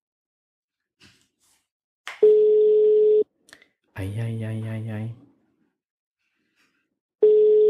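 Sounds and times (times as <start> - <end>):
steady telephone ringback tone over the line: 2.3 - 3.2, 7.2 - 7.6
speech: 4.0 - 5.2.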